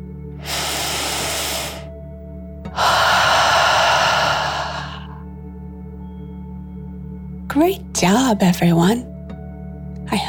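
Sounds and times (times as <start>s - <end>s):
deep breaths in and out in a calming bedtime breathing exercise: 0.4s - 2.0s, 2.7s - 5.3s
speech: 7.6s - 9.1s.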